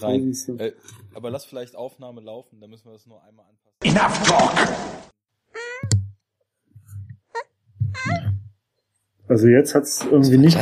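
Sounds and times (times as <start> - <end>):
speech: 0.0 - 5.2, 9.3 - 10.6
cat meowing: 5.6 - 6.0, 7.3 - 8.5
soft low thumps: 6.8 - 8.6.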